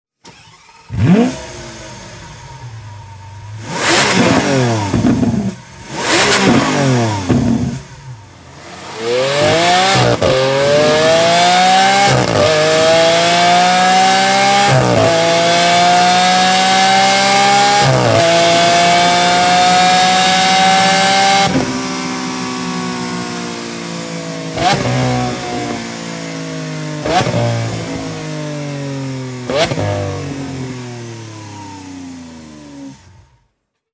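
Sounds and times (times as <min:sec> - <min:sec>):
stock Lamborghini Aventador exhaust: 0:00.5 - 0:33.6.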